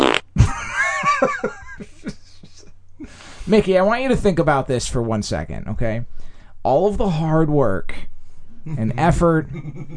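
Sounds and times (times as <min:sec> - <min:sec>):
short low blubbery fart: 0:00.0 - 0:00.3
breathy bouncing laughter: 0:00.4 - 0:03.7, 0:08.6 - 0:09.9
speech: 0:03.5 - 0:08.0, 0:08.6 - 0:09.9.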